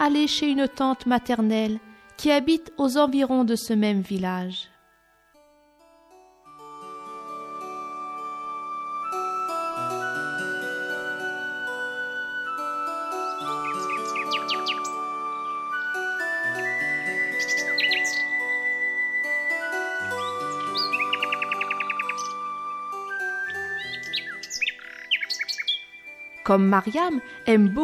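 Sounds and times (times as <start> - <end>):
speech: 0.0 - 4.7, 26.5 - 27.8
sustained musical tones: 0.0 - 27.8
quick buzzing bird trill: 7.4 - 27.8
small cage birds chirping and squawking: 13.2 - 15.6, 17.3 - 18.5, 20.1 - 22.5, 23.4 - 26.4.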